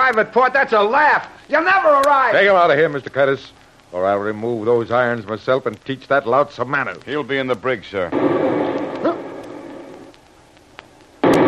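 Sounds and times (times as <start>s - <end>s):
speech: 0.1s - 8.7s
torpedo explosion hitting a ship: 8.1s - 10.2s, 11.2s - 11.4s.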